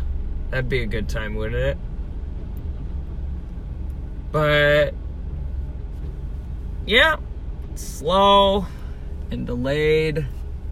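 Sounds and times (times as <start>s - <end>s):
large backhoe engine rumbling while scooping material: 0.0s - 10.6s
speech: 0.5s - 1.9s, 4.3s - 5.0s, 6.9s - 10.4s.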